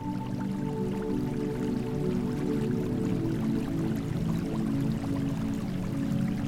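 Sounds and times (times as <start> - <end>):
water trickling and dripping from a small spring: 0.0 - 6.4.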